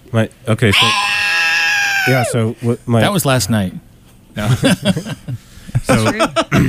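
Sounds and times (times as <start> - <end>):
speech: 0.1 - 1.1, 2.0 - 6.6
fisher cat scream: 0.7 - 2.4
fisher cat short throaty yelps: 0.7 - 2.4.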